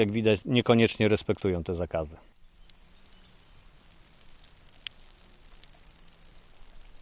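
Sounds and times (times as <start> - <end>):
speech: 0.0 - 2.4
water flowing from an artesian well: 2.3 - 7.0.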